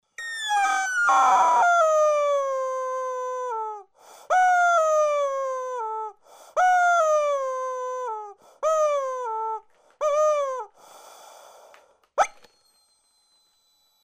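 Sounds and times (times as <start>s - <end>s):
toy chicken screaming: 0.2s - 10.7s.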